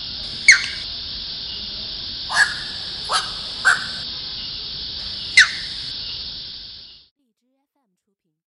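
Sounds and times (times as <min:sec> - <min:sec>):
grey heron croaking at Baiyangdian: 0:00.0 - 0:06.3
steady high-pitched hiss: 0:00.0 - 0:07.1.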